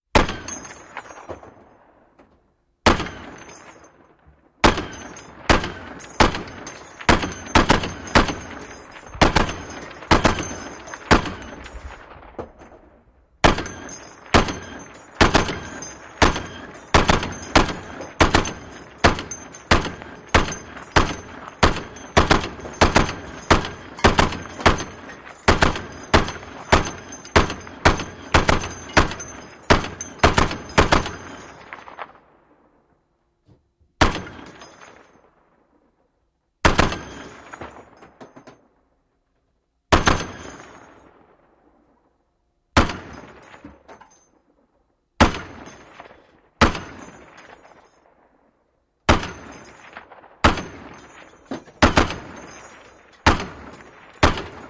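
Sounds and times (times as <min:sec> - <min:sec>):
50 Cal machine gun firing at various speeds: 0:04.6 - 0:11.8, 0:13.4 - 0:31.4, 0:36.6 - 0:37.3, 0:39.9 - 0:40.6, 0:45.2 - 0:47.2, 0:49.1 - 0:51.0, 0:51.8 - 0:52.5, 0:53.2 - 0:54.6.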